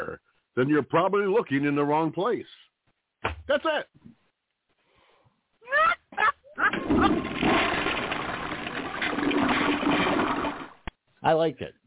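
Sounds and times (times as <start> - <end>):
speech: 0.6 - 2.6, 3.2 - 4.0, 11.2 - 11.8
toilet flushing with rushing water: 6.7 - 10.8.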